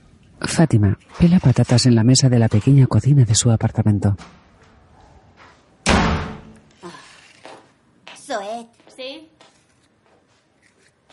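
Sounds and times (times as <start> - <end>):
speech: 0.6 - 4.4
door slamming hard in a small apartment: 5.8 - 6.6.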